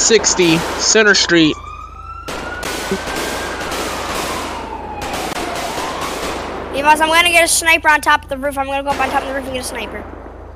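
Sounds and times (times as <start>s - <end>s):
gunshots in a police SWAT video game: 0.0s - 1.5s, 2.3s - 7.2s, 8.8s - 10.5s
siren wailing in a police SWAT video game: 0.0s - 7.6s
speech: 0.1s - 1.7s, 2.9s - 3.2s, 6.8s - 10.2s.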